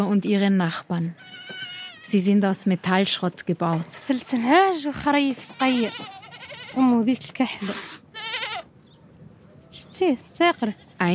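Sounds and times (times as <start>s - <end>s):
speech: 0.0s - 8.0s, 10.0s - 11.1s
goats or sheep of Sahrawi families bleating: 1.2s - 2.2s, 5.2s - 7.1s, 8.1s - 8.7s.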